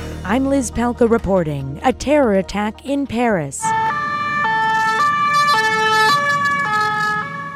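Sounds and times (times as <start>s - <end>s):
speech: 0.3s - 4.0s
European two-tone emergency siren: 3.6s - 7.5s.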